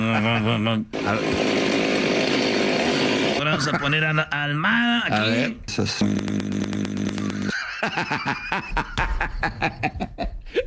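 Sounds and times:
laughter: 0.0s - 0.8s, 3.4s - 4.2s, 7.2s - 10.6s
speech: 0.1s - 1.5s, 3.5s - 7.2s, 7.8s - 10.6s
chainsaw engine idling and running at full throttle: 0.9s - 3.4s, 6.0s - 7.5s.

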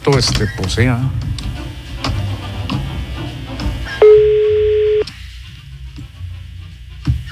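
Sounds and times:
speech: 0.0s - 1.3s
low noise: 0.0s - 7.2s
ringback tone on an outgoing phone call: 4.0s - 5.1s.

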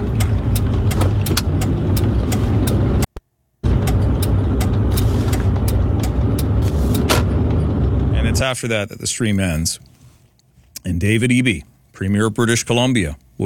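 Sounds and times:
large vehicles rumbling on a road: 0.0s - 9.6s
sharp clicks and hisses: 4.9s - 5.6s
speech: 8.4s - 10.0s, 10.8s - 13.4s.

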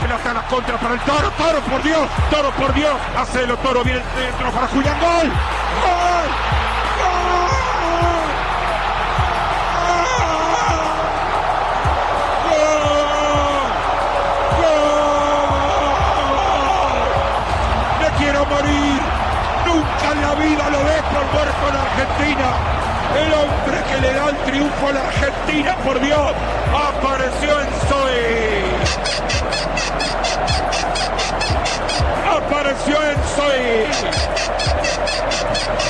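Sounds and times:
excited Argentine radio football commentary: 0.0s - 8.4s, 14.6s - 35.8s
roaring football crowd: 0.0s - 35.8s
shrill warbling squeaks: 28.9s - 32.2s, 33.9s - 35.8s.

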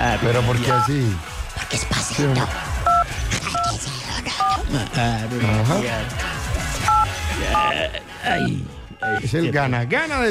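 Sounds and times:
speech: 0.1s - 2.7s, 4.7s - 6.3s, 7.4s - 10.2s
touch-tone telephone keypad beeps: 0.7s - 0.9s, 2.9s - 3.7s, 6.9s - 7.7s.

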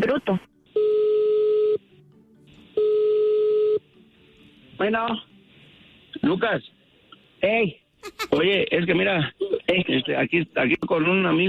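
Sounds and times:
speech: 0.1s - 0.5s, 4.8s - 5.3s, 6.2s - 6.8s, 7.4s - 11.4s
telephone ringback tone: 0.8s - 1.8s, 2.8s - 3.8s.

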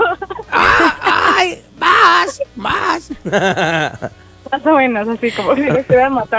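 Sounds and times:
laughter: 0.0s - 4.2s, 5.0s - 6.3s
human voice mimicking a parrot's squawking scream: 0.5s - 3.3s
speech: 3.2s - 6.3s.

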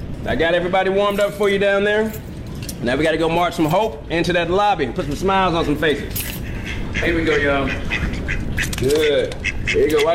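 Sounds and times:
steady hum: 0.0s - 10.1s
speech: 0.2s - 2.2s, 2.8s - 6.3s, 6.9s - 8.1s, 8.8s - 10.1s
ducks quacking: 6.4s - 10.1s.

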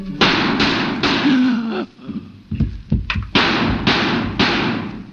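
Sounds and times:
loud gunshots: 0.2s - 1.3s, 3.3s - 5.1s.

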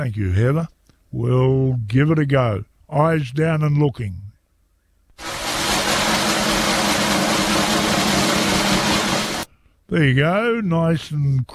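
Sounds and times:
speech: 0.0s - 4.2s, 9.9s - 11.5s
snare drum roll: 5.2s - 9.5s.

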